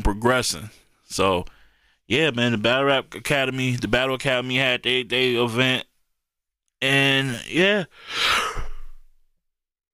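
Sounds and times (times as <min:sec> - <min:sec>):
speech: 0:00.1 - 0:05.9, 0:06.8 - 0:08.7
breathy yawn with an airy exhale: 0:07.9 - 0:09.1.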